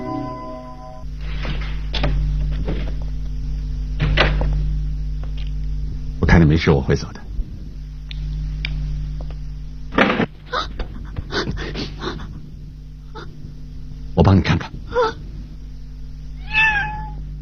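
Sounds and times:
low steady hum: 0:00.0 - 0:17.4
speech: 0:06.6 - 0:07.3
cat meowing: 0:16.4 - 0:17.2.

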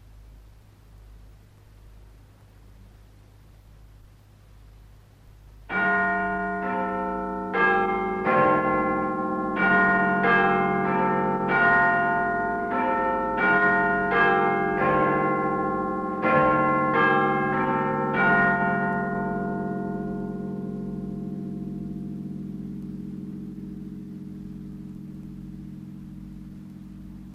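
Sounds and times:
clock tower bells chiming a slow melody striking the hour: 0:05.7 - 0:23.5.

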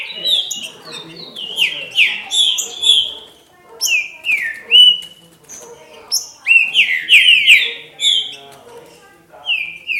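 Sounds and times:
green-winged saltator singing slurred whistles: 0:00.0 - 0:05.1, 0:06.2 - 0:08.4, 0:09.4 - 0:09.9.

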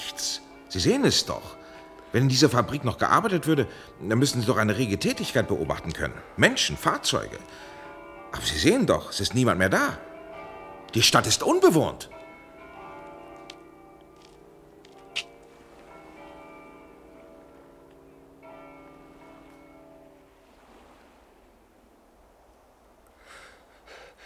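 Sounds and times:
church bells ringing in an empty uninhabited town: 0:00.0 - 0:23.1
quiet rushing background: 0:00.0 - 0:24.2
speech: 0:00.7 - 0:07.7, 0:08.3 - 0:10.1, 0:10.9 - 0:12.2.

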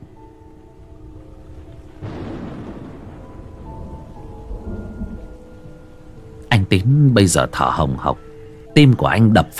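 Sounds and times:
steady rain: 0:00.0 - 0:09.5
loud thunderclap rolling into a long deep rumble: 0:00.8 - 0:05.8
speech: 0:06.7 - 0:08.2, 0:08.8 - 0:09.5.

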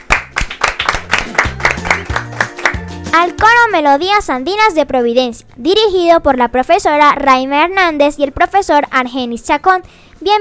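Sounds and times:
small group clapping to welcome guests into a studio: 0:00.0 - 0:03.5
speech: 0:03.1 - 0:10.4.

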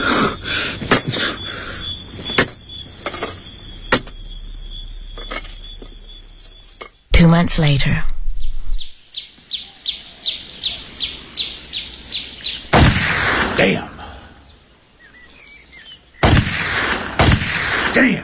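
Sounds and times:
rapid regular high bird chirps: 0:00.0 - 0:12.7
speech: 0:07.2 - 0:08.1, 0:13.6 - 0:13.9
black-powder gun fired at playing cards: 0:12.7 - 0:13.9, 0:16.2 - 0:18.2.

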